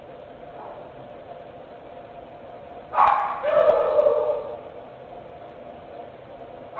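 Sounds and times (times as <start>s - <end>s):
steady hum: 0.0s - 6.7s
dog yelping and barking: 2.9s - 4.6s.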